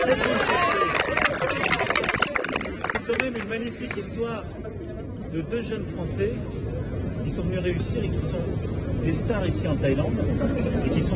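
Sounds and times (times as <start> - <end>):
crowd cheering in Thailand: 0.0 - 3.2
crowd clapping in Thailand: 0.0 - 4.0
crowd voices mixed into applause: 0.0 - 11.1
speech: 3.4 - 6.6, 7.2 - 11.1.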